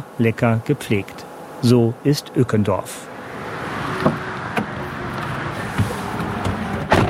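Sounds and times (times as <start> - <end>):
speech: 0.0 - 3.1
street cleaning vehicle rumbling: 0.0 - 7.0
street cleaning vehicle sharp clunks and knocks: 4.0 - 7.0.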